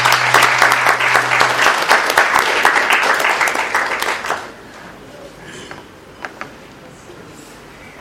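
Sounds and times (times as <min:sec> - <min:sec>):
audience applause for speakers at a workshop: 0:00.0 - 0:05.1.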